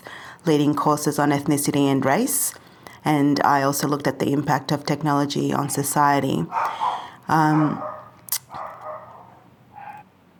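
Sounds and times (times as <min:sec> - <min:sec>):
speech: 0:00.4 - 0:07.9
dog barking: 0:06.5 - 0:10.0.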